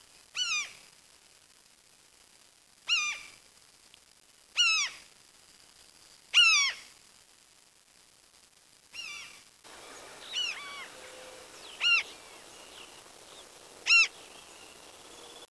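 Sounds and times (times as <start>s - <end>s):
soft background hiss: 0.0s - 15.4s
bird calls of short harmonic dipping and rising notes: 9.0s - 15.4s.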